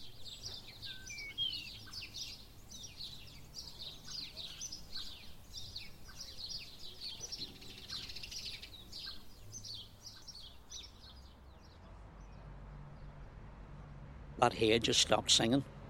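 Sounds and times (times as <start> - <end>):
sparrows chirping in a hedge: 0.0 - 15.6
traffic rumble: 0.0 - 15.8
speech: 14.4 - 15.8.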